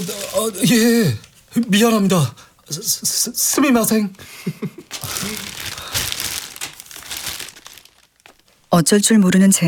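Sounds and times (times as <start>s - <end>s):
plastic bag crinkling as a man hands it over: 0.0s - 2.1s, 3.4s - 8.8s
speech: 0.0s - 5.5s, 8.7s - 9.6s.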